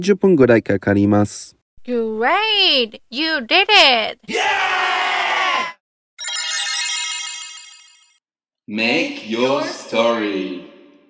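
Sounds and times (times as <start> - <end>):
speech: 0.0 - 4.9, 8.7 - 10.7
loud electronic phone ringtone: 6.2 - 8.2.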